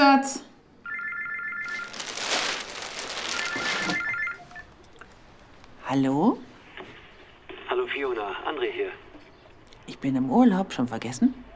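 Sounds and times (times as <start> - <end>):
speech: 0.2 - 0.5, 5.9 - 6.5, 8.0 - 9.1, 9.9 - 11.5
electronic telephone ringing: 0.8 - 1.9, 3.4 - 4.8.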